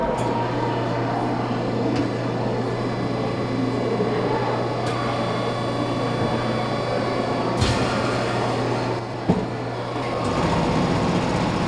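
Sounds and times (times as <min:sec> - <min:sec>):
Mold-A-Rama vending machine rumbling while molding a plastic chick at a museum: 0:00.0 - 0:11.6
Mold-A-Rama vending machine clunks: 0:07.6 - 0:08.4.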